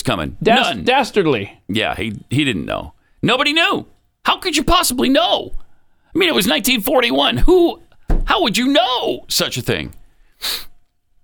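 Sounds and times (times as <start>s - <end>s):
speech: 0.0s - 10.7s
sniffle: 10.4s - 10.8s.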